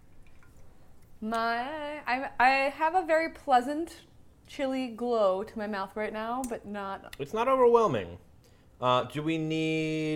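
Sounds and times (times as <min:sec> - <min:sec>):
beer being poured: 0:00.0 - 0:01.0
speech: 0:01.2 - 0:10.1.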